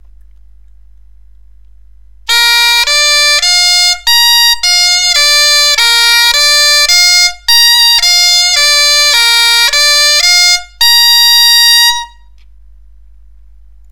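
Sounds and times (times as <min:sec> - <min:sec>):
bombarde playing a B minor arpeggio: 0:02.3 - 0:12.2.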